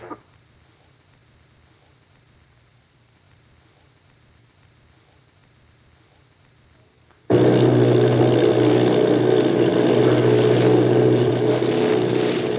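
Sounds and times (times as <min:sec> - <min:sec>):
bomber plane engines droning in flight: 0:07.3 - 0:12.5.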